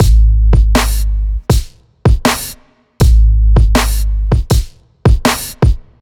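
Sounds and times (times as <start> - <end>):
funk drum kit: 0.0 - 6.0.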